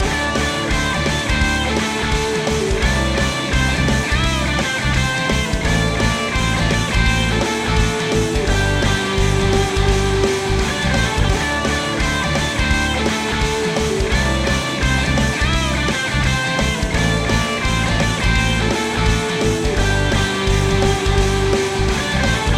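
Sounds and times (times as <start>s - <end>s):
blues rock music: 0.0s - 22.5s.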